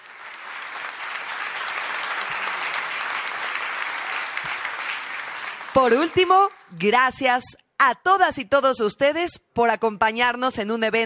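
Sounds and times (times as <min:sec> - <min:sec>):
large audience applause at a Lotería Nacional ceremony: 0:00.0 - 0:06.6
speech: 0:05.8 - 0:11.0.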